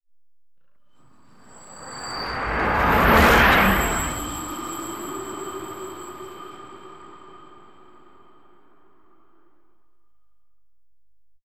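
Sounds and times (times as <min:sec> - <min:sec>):
train passing by: 0:01.0 - 0:09.6.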